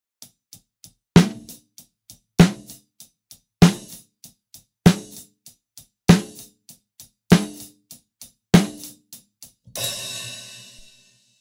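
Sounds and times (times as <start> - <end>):
snare drum recorded with a microphone for a microphone test: 1.2 - 1.7, 2.4 - 2.8, 3.6 - 4.0, 4.9 - 5.3, 6.1 - 6.6, 7.3 - 10.9.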